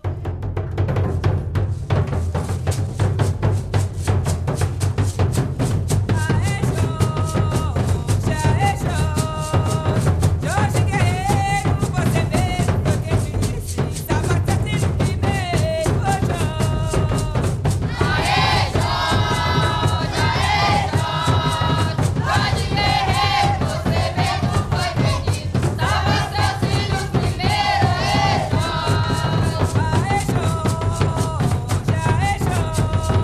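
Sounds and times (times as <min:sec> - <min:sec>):
candombe hand-drum rhythm on a Mozambican base beat: 0:00.0 - 0:33.2
group of voices chanting or singing along: 0:17.9 - 0:29.7.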